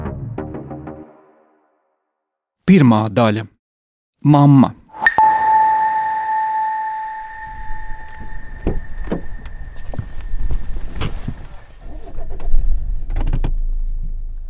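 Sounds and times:
speech: 2.7 - 3.5, 4.2 - 4.8
sustained electronic chime tone: 4.9 - 11.1
low rumble of a moving car interior: 7.8 - 14.4.

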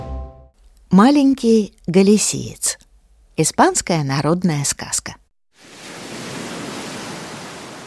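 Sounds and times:
speech: 1.0 - 2.8, 3.4 - 5.2
sea waves breaking against steep cliffs on the Galician coast: 5.6 - 7.8.

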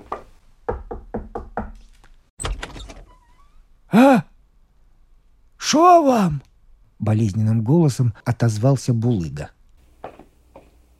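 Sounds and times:
firm knocks on a door: 0.1 - 1.8
speech: 5.7 - 9.6.

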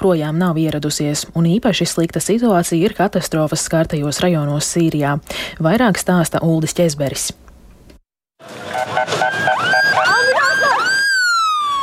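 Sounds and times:
speech: 0.0 - 7.5
ambulance siren: 8.4 - 11.8.

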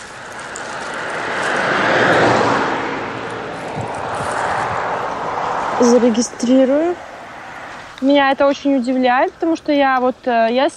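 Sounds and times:
car passing by: 0.0 - 8.1
speech: 5.8 - 7.1, 8.0 - 10.7.

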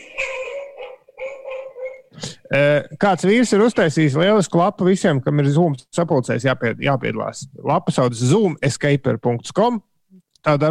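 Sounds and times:
dogs barking: 0.0 - 2.2
speech: 2.5 - 10.6.

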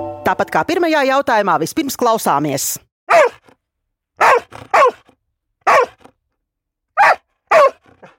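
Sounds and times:
speech: 0.3 - 3.3
dog barking: 3.1 - 3.6, 4.2 - 6.1, 6.9 - 8.1.

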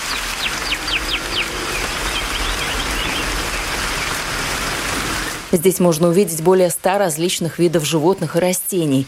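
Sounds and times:
heavy tropical downpour in indoor rainforest: 0.0 - 9.0
bird giving high chirps: 0.1 - 4.2
speech: 5.5 - 9.0.

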